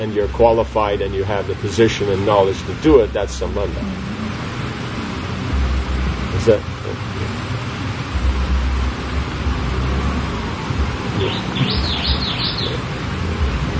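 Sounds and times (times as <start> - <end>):
speech: 0.0 - 4.1, 6.4 - 7.1, 11.2 - 12.0
broadband hiss: 0.0 - 13.7
small bird chirping: 11.1 - 12.9.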